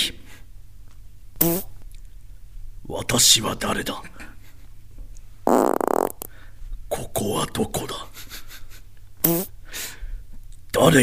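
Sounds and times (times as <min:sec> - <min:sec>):
short loud buzzy rasping fart: 0:01.4 - 0:01.7, 0:05.5 - 0:06.3, 0:09.2 - 0:09.6
speech: 0:01.4 - 0:01.7, 0:02.9 - 0:04.3, 0:07.2 - 0:08.1, 0:09.2 - 0:09.5, 0:10.8 - 0:11.0.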